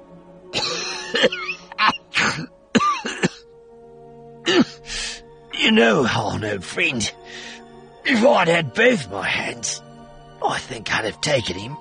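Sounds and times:
deep rasping cough: 0:00.5 - 0:03.5, 0:04.4 - 0:05.0
speech: 0:01.1 - 0:01.5, 0:05.7 - 0:09.8, 0:10.4 - 0:11.7.

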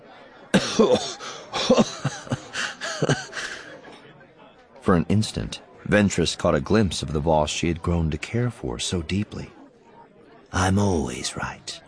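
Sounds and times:
laughter: 0:00.1 - 0:04.2
man coughing in harsh wheezing bursts: 0:00.6 - 0:03.8
speech: 0:00.8 - 0:02.4, 0:04.9 - 0:09.6, 0:10.5 - 0:11.8.

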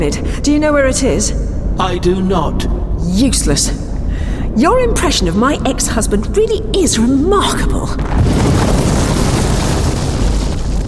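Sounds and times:
speech: 0:00.0 - 0:03.8, 0:04.6 - 0:08.2
bomb explosion: 0:07.9 - 0:10.8.

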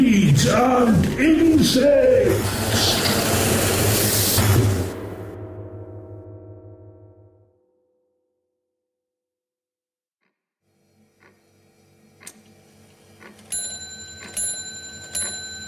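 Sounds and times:
speech: 0:00.0 - 0:02.5
loud rushing burst: 0:01.6 - 0:05.5
faint clock ticking: 0:11.2 - 0:11.4, 0:12.2 - 0:12.4, 0:13.2 - 0:15.6
kitchen wall clock chiming: 0:13.2 - 0:15.6.

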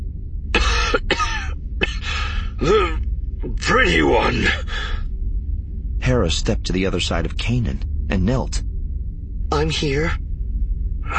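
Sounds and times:
low rumbling background: 0:00.0 - 0:11.1
old battered man coughing: 0:00.6 - 0:03.0
speech: 0:02.6 - 0:02.9, 0:03.8 - 0:04.6, 0:06.1 - 0:08.7, 0:09.6 - 0:10.2.

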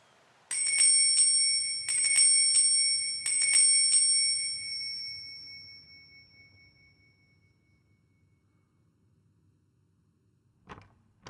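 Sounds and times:
doorbell ringing: 0:00.5 - 0:07.9.

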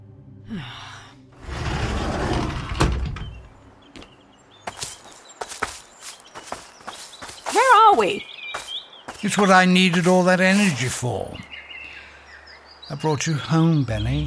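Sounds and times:
speech: 0:00.5 - 0:00.8, 0:08.0 - 0:08.3, 0:09.2 - 0:11.5, 0:12.9 - 0:14.2
door swinging open with a rushing rumbling sweep and sharp clunk: 0:01.4 - 0:03.6
crisp uneven footsteps: 0:03.9 - 0:11.0.

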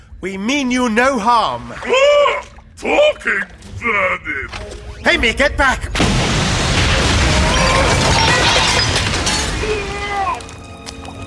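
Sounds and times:
speech: 0:00.2 - 0:06.4
crashing, shattering debris: 0:05.8 - 0:11.2
loud explosion: 0:05.9 - 0:10.2.

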